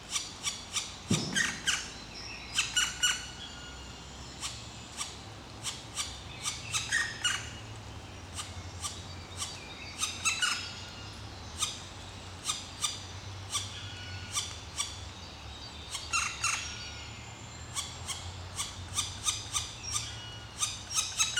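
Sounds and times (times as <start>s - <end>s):
Black woodpecker Dryocopus martius uttering short clipped calls: 0.1s - 7.8s, 8.4s - 11.8s, 12.4s - 15.0s, 17.8s - 21.3s
faint higher songbird notes: 0.2s - 21.3s.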